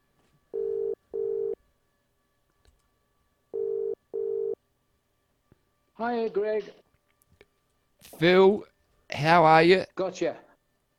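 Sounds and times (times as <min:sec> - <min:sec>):
telephone ringback tone: 0:00.6 - 0:01.6, 0:03.6 - 0:04.6
speech: 0:06.0 - 0:06.8, 0:08.2 - 0:10.5.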